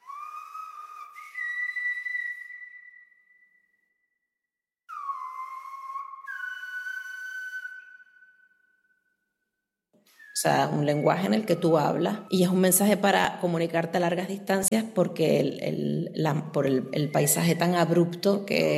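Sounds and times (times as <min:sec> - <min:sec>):
Silbo Gomero whistled language phrases with sliding pitch: 0:00.0 - 0:04.2, 0:04.9 - 0:09.4, 0:10.0 - 0:13.5, 0:16.2 - 0:18.7
speech: 0:10.4 - 0:18.7.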